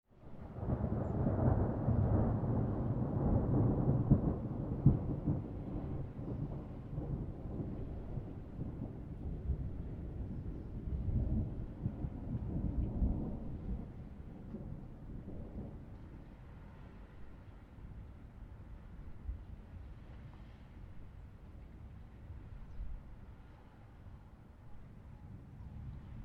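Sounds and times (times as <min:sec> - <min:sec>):
distant thunderclap with long rumble tail: 0:00.3 - 0:17.2.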